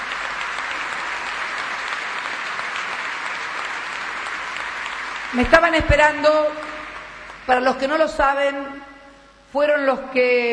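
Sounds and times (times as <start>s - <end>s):
audience applause for workers of a cooperative: 0.0s - 7.5s
speech: 5.3s - 6.6s, 7.5s - 8.9s, 9.5s - 10.5s.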